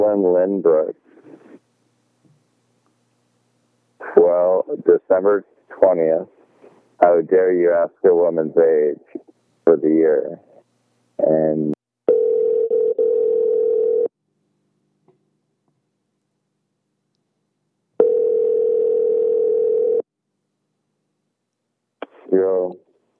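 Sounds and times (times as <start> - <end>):
speech: 0.2 - 1.0, 4.3 - 6.4, 7.0 - 10.5, 11.2 - 11.8
steady telephone tone: 12.1 - 14.1, 18.0 - 20.0.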